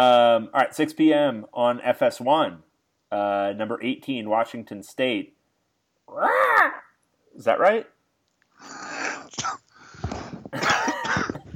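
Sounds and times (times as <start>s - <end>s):
speech: 0.0s - 5.4s, 6.1s - 6.8s, 7.4s - 8.0s
gasping breaths: 8.6s - 10.6s
laughter: 10.5s - 11.5s
wheezy strained coughing after laughing: 10.5s - 11.5s.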